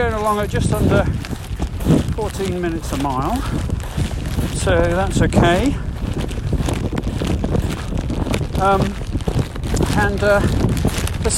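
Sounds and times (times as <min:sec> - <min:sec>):
speech: 0:00.0 - 0:05.9, 0:08.6 - 0:09.1, 0:10.0 - 0:10.7
loud blustery wind buffeting the microphone: 0:00.0 - 0:11.3.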